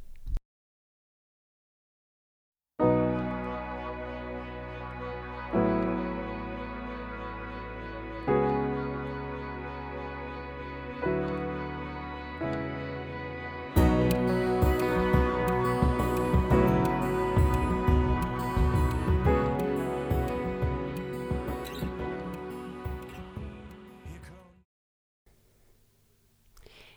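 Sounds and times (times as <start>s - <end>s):
sustained keyboard chords in a German pop song: 5.6s - 24.0s
full drum beat in a German pop song: 14.6s - 22.2s.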